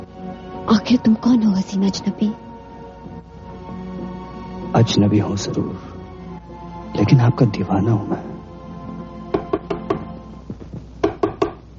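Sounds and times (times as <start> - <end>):
speech: 0.7 - 2.4, 4.8 - 6.0, 7.0 - 8.3
knocking on a door: 9.3 - 11.6.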